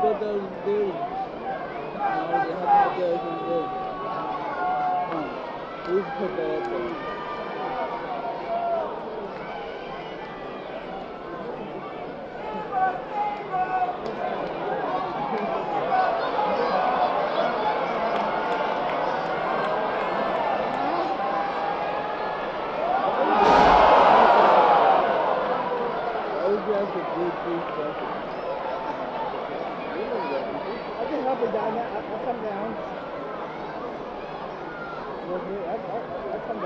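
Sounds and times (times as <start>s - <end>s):
packed arena crowd roaring and chanting: 0.0s - 36.6s
sudden loud burst in an arena: 23.2s - 25.9s.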